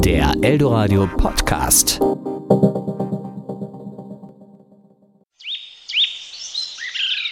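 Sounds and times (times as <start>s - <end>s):
speech: 0.1s - 2.7s
birds chirping and twittering: 5.4s - 7.2s.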